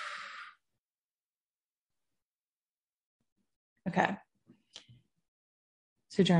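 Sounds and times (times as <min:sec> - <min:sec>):
big inhale through the nose during breathing exercise: 0:00.0 - 0:00.6
long breathy exhale during deep breathing exercise: 0:00.0 - 0:00.7
speech: 0:03.9 - 0:04.3, 0:06.2 - 0:06.3.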